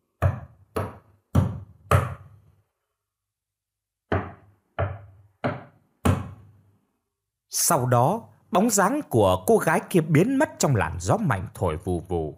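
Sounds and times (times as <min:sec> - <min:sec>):
knocking on a door inside a pitch-dark house: 0:04.1 - 0:06.4
speech: 0:07.5 - 0:12.3.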